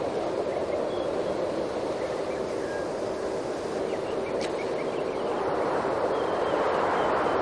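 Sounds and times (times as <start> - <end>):
exterior woodland ambience: 0.2 - 7.3.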